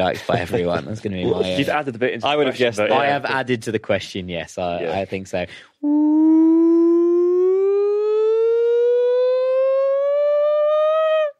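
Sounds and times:
speech: 0.0 - 6.8
voice imitating a siren: 5.8 - 11.3.

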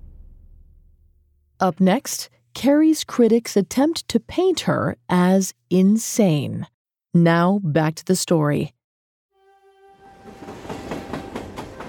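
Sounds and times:
speech: 1.6 - 8.8
train whistle: 9.4 - 11.8
rumbling train with wheels clacking over the rails: 10.3 - 11.8.

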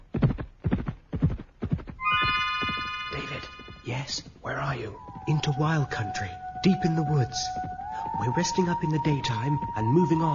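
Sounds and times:
great horses galloping with thudding hoofbeats: 0.0 - 10.3
high shrill horse neigh: 2.0 - 3.8
speech: 4.0 - 10.3.

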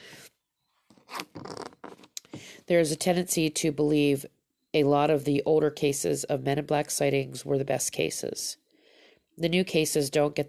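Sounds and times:
person slurping a sip of super hot tea: 1.1 - 1.9
speech: 2.7 - 8.6, 9.4 - 10.4.

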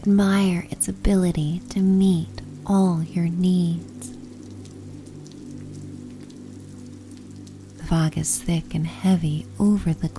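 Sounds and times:
speech: 0.0 - 4.1, 7.9 - 10.1
constant low hum: 0.0 - 10.1
rain falling on roof shingles: 3.6 - 10.1.

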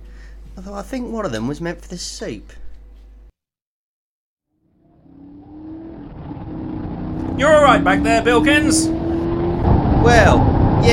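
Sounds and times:
speech: 0.6 - 2.6, 7.4 - 9.0, 10.0 - 10.9
car engine accelerating: 4.7 - 10.9.

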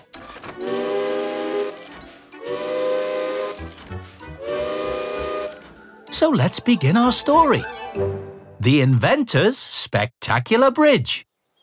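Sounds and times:
alarm clock made from old railway engine steam whistles: 0.6 - 6.2
speech: 6.2 - 11.3.

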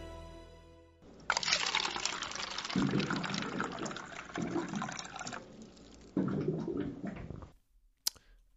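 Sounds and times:
water pouring and glugging into a water cooler: 1.3 - 7.6.

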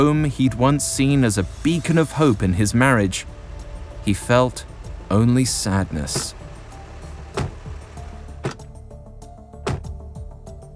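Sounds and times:
speech: 0.0 - 3.4, 4.0 - 6.4
car idling at a family home: 0.0 - 10.5
car doors clunking as children get out: 3.4 - 8.8, 9.6 - 10.0.

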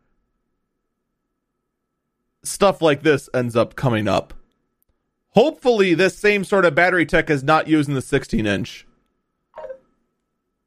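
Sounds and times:
speech: 2.4 - 4.4, 5.3 - 8.9
phone notification chime from a phone in a pocket: 9.6 - 9.8.

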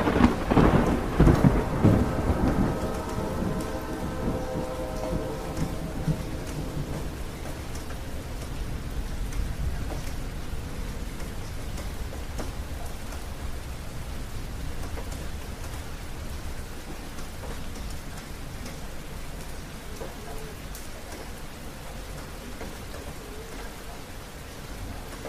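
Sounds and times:
loud thunderclap of a mountain thunderstorm: 0.0 - 20.2
rain pattering on the roof of a mountain getaway: 0.0 - 25.2.

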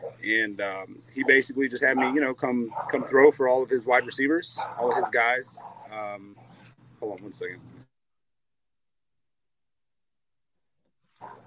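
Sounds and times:
dogs barking: 0.0 - 0.4, 1.1 - 6.7, 11.2 - 11.4
speech: 0.2 - 7.8.

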